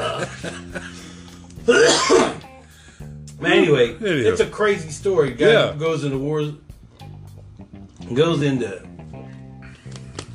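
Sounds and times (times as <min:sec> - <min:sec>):
laughter: 0:00.0 - 0:01.2
person coughing harshly: 0:01.6 - 0:02.5
speech: 0:03.7 - 0:06.6, 0:08.1 - 0:08.9.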